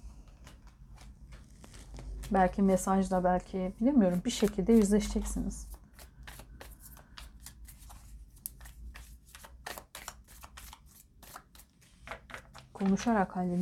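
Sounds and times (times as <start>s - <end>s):
tarot cards being shuffled: 0.2s - 2.4s, 4.1s - 13.2s
speech: 2.3s - 5.8s, 12.8s - 13.6s.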